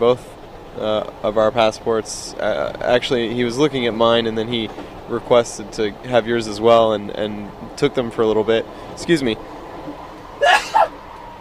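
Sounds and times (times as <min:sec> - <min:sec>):
speech: 0:00.0 - 0:10.5
person sneezing: 0:10.4 - 0:10.9.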